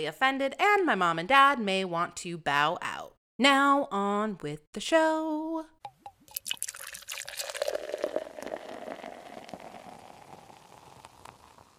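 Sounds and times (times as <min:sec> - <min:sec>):
speech: 0:00.0 - 0:05.8
liquid pouring into a container: 0:06.2 - 0:11.7.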